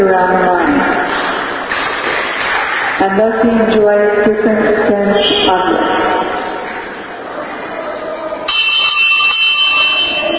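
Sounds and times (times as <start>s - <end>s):
room noise: 0.0s - 10.3s
speech: 3.1s - 6.1s
electric five-minute warning bell ringing: 8.5s - 10.3s.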